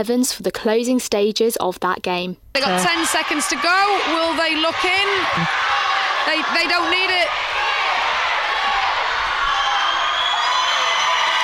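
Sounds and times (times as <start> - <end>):
speech: 0.0 - 7.5
large indoor crowd cheering and shouting after a netball win: 2.6 - 11.4.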